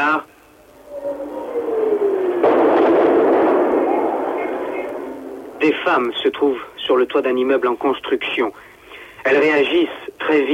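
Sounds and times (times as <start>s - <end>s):
rising whistle-like tone of a missile: 0.4s - 6.2s
explosion from missile strike on a city: 0.6s - 6.5s
speech: 5.8s - 10.5s.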